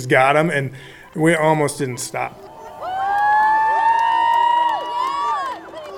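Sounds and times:
speech: 0:00.0 - 0:02.4
crowd on a dock cheering and yelling at a race finish: 0:01.5 - 0:05.9.

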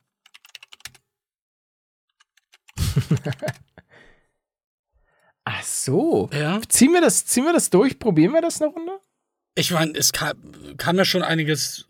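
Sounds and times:
computer keyboard typing a message: 0:00.0 - 0:01.0, 0:02.1 - 0:03.8
laughter: 0:02.8 - 0:03.7
speech: 0:03.1 - 0:03.9, 0:05.6 - 0:09.0, 0:09.6 - 0:11.8.

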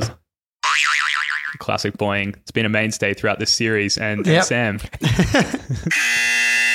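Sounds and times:
speech: 0:01.6 - 0:06.6
laughter: 0:04.9 - 0:06.0
game show buzzer being tested: 0:05.8 - 0:06.7.

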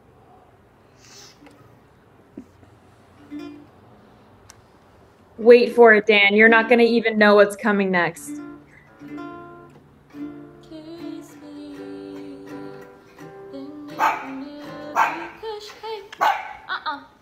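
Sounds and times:
speech: 0:05.4 - 0:08.4
dog barking: 0:13.9 - 0:15.4, 0:16.2 - 0:16.7.

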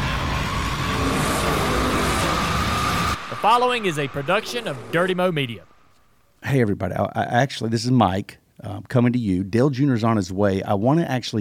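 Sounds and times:
race car engine revving at high revs: 0:00.0 - 0:05.9
speech: 0:03.4 - 0:05.7, 0:06.4 - 0:11.3.

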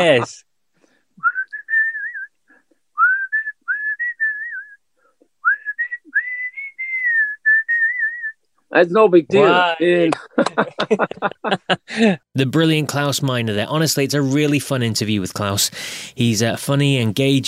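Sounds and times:
speech: 0:00.0 - 0:00.5, 0:08.7 - 0:17.4
person whistling a short melodic tune: 0:01.2 - 0:08.4
laughter: 0:09.4 - 0:12.2.

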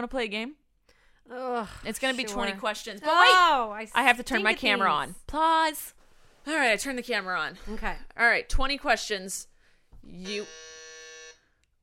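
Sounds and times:
speech: 0:00.0 - 0:00.6, 0:01.3 - 0:10.8
game show buzzer sound effect: 0:10.2 - 0:11.4.

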